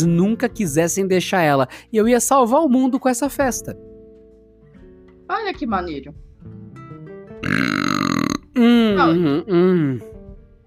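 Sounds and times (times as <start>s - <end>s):
speech: 0.0s - 3.9s, 5.3s - 6.6s, 8.6s - 10.1s
closed-mouth burp with buzzing nasal rumble: 7.4s - 10.1s.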